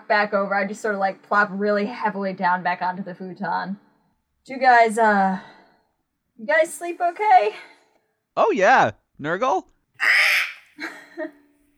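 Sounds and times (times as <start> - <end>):
speech: 0.1 - 3.8, 4.4 - 5.6, 6.4 - 7.7, 8.4 - 10.2
person imitating a seagull squawk: 10.0 - 10.7.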